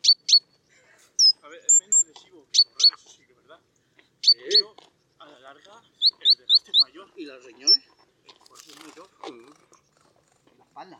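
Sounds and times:
great tit Parus major chirping call notes: 0.0 - 0.6, 1.2 - 3.0, 4.2 - 5.2, 5.8 - 7.0.

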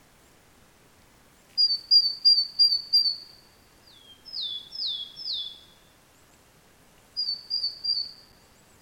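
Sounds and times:
great tit calls: 1.6 - 5.9, 7.2 - 8.8.

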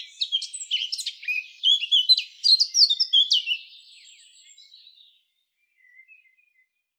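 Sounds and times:
Eurasian blackcap Sylvia atricapilla singing: 0.0 - 5.0.

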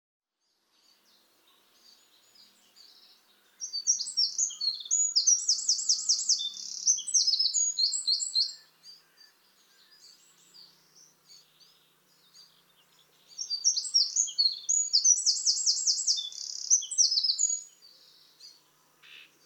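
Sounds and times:
Eurasian wren Troglodytes troglodytes singing: 0.7 - 19.4.

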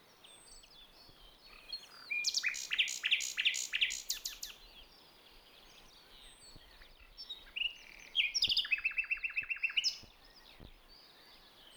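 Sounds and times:
common nightingale Luscinia megarhynchos singing: 1.4 - 4.9, 6.7 - 10.4.

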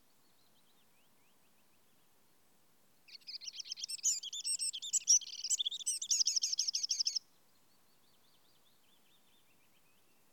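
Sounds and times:
Eurasian wren Troglodytes troglodytes singing: 3.1 - 7.2.

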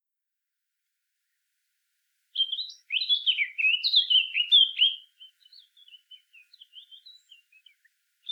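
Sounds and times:
Sylvia atricapilla Eurasian blackcap singing: 2.4 - 8.3.

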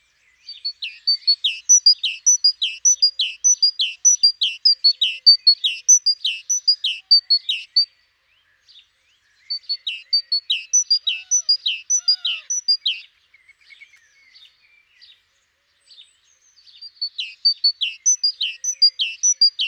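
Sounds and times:
great tit Parus major chirping: 0.5 - 7.8, 9.5 - 14.4, 16.7 - 19.6.

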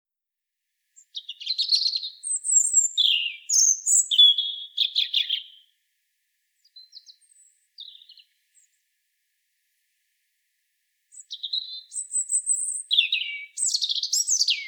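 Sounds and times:
European robin Erithacus rubecula singing: 1.0 - 5.7, 6.6 - 8.8, 11.1 - 14.6.

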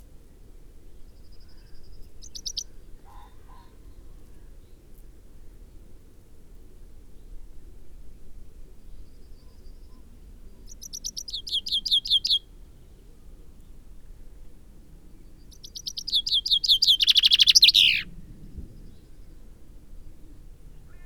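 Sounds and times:
Common Chaffinch Fringilla coelebs song trill: 15.6 - 18.0.

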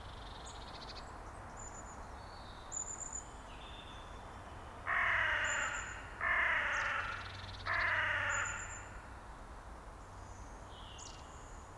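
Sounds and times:
Carrion crow Corvus corone giving long grating caws: 4.9 - 9.1.

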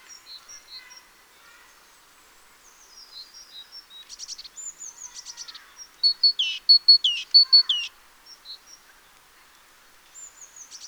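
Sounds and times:
great tit calling: 6.0 - 7.9.

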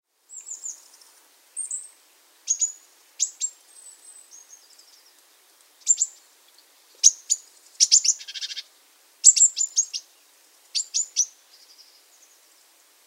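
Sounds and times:
Eurasian blue tit calling: 2.5 - 5.0, 5.8 - 6.2, 7.0 - 10.1, 10.8 - 12.0.

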